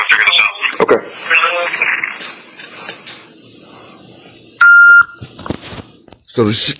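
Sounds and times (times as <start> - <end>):
noise: 0.0 - 6.7
speech: 0.8 - 1.9, 6.4 - 6.7
loud steady telephone on-hold beep: 4.6 - 5.2.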